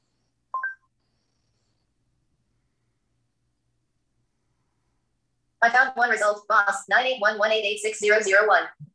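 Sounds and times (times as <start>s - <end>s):
electronic phone dialing beeps stepping up in pitch: 0.6s - 0.9s
speech: 5.6s - 8.9s.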